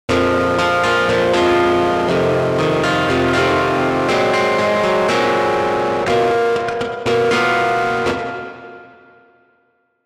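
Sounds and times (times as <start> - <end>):
electric guitar riff without EQ: 0.1 - 9.2.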